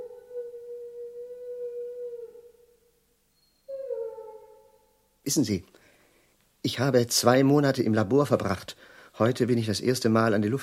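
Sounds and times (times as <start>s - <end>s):
dog howling on a humid day: 0.0s - 2.6s, 3.7s - 4.6s
speech: 5.2s - 5.8s, 6.6s - 10.6s.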